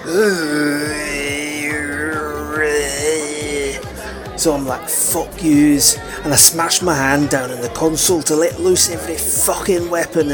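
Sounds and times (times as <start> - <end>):
voice imitating a huge one-eyed alien monster groaning: 0.0 - 6.1
faint rhythmic pulsing: 0.0 - 10.3
speech: 0.1 - 1.0, 4.4 - 10.3.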